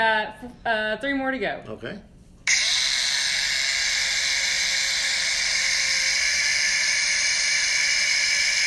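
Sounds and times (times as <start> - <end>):
speech: 0.0 - 2.1
power drill whirring with high-pitched motor whine: 2.5 - 8.6.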